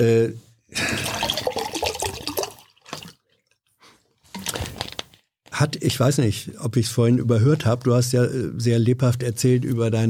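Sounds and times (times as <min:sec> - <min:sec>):
speech: 0:00.0 - 0:01.1, 0:05.6 - 0:10.0
water being poured into a glass: 0:00.8 - 0:03.4.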